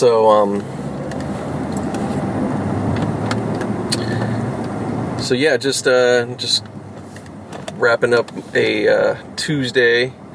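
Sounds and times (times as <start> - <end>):
speech: 0.0 - 0.8, 5.2 - 6.8, 7.8 - 10.2
car pulling out with engine and road noise: 0.0 - 10.3.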